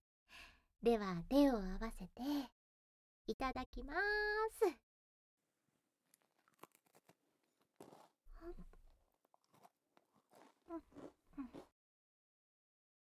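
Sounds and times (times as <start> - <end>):
speech: 0.8 - 2.6, 3.3 - 4.8, 8.4 - 8.7, 10.7 - 11.6
butter-and-milk cookie being bitten and chewed: 6.0 - 11.7.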